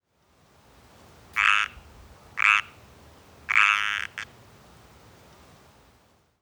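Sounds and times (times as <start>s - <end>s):
Pacific treefrog Pseudacris regilla calling: 1.4s - 4.3s.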